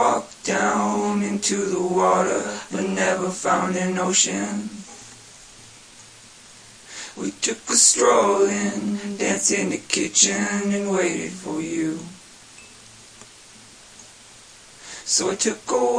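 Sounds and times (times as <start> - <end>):
person singing folk vocals: 0.0 - 5.0, 7.0 - 12.2, 14.9 - 15.9.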